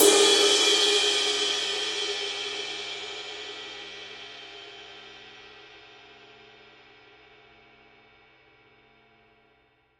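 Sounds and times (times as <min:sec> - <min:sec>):
heavy ride cymbal edge hits: 0:00.0 - 0:04.7.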